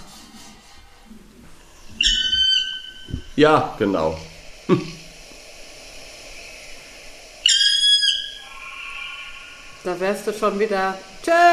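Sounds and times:
black woodpecker plaintive wailing call played from a recording: 1.9s - 3.4s, 6.3s - 10.2s
speech: 3.4s - 5.0s, 10.0s - 11.5s.

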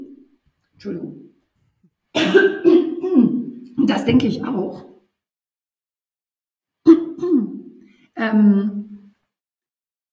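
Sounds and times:
speech: 0.8s - 1.3s, 2.1s - 4.9s, 8.2s - 8.8s
person clearing throat: 2.2s - 3.6s, 6.9s - 7.7s.

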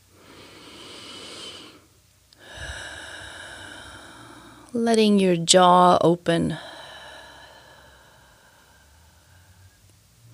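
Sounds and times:
deep breathing in through the nose and out through the mouth during a grounding meditation: 0.0s - 4.8s, 6.6s - 10.3s
speech: 4.7s - 6.7s.

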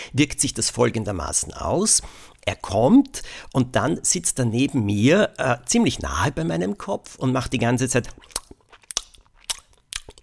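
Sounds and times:
speech: 0.1s - 8.4s
person imitating a dog smacking its lips: 8.0s - 10.2s.

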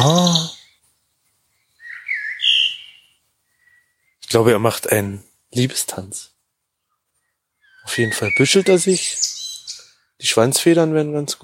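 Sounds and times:
speech: 0.0s - 0.5s, 4.3s - 6.4s, 7.8s - 9.3s, 10.2s - 11.4s
whistled bird call rising in pitch: 1.8s - 4.2s, 7.6s - 10.0s.

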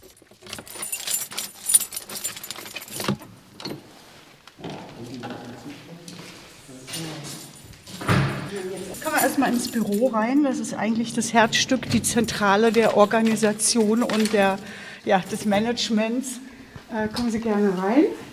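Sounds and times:
bunch of keys jangling: 0.0s - 3.3s, 6.9s - 15.8s
faint room noise: 0.0s - 18.3s
speech: 8.6s - 18.3s.

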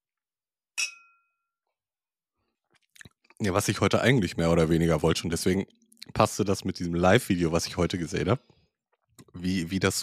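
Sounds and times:
glasses clinking in a toast: 0.8s - 1.3s
speech: 3.4s - 8.6s, 9.3s - 10.0s.

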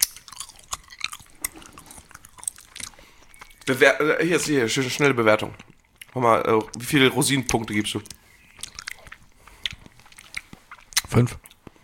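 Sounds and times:
wet chewing of soft gummy candy: 0.0s - 3.8s, 4.7s - 11.7s
speech: 3.7s - 8.2s, 11.2s - 11.5s.

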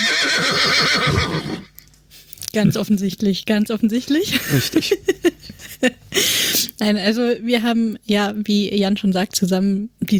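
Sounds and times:
horse whinnying: 0.0s - 1.8s
speech: 2.6s - 10.1s.

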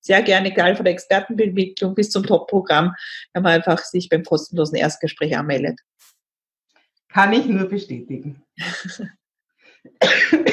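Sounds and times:
speech: 0.0s - 6.1s, 7.1s - 9.2s, 9.8s - 10.5s
harsh coughs from a scratchy throat: 9.9s - 10.5s.

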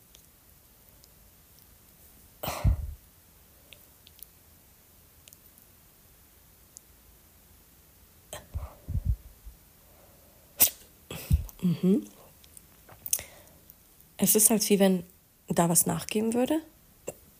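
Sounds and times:
person hiccuping after pulling on tongue: 10.6s - 12.2s
speech: 11.6s - 12.2s, 14.2s - 16.7s.

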